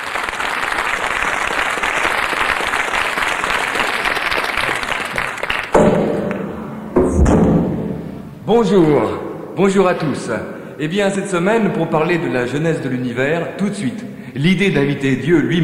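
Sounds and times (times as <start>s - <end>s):
loud dense audience applause: 0.0s - 5.8s
scattered thumps: 5.7s - 9.6s
speech: 8.5s - 15.6s.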